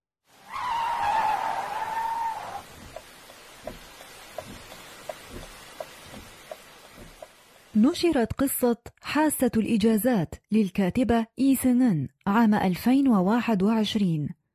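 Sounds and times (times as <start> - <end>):
steady rain: 0.3 - 8.0
car tire screech skidding to a halt: 0.4 - 2.8
speech: 7.8 - 14.4.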